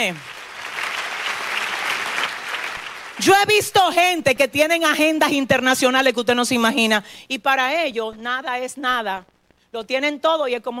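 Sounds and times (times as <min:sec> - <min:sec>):
speech: 0:00.0 - 0:00.3, 0:03.2 - 0:10.7
church sermon audience applauding: 0:00.0 - 0:03.2.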